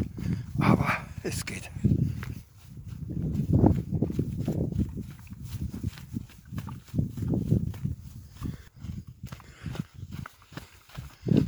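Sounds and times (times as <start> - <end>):
barefoot footsteps on stony ground during a downhill mountain run: 0.0 - 11.4
speech: 0.7 - 2.0.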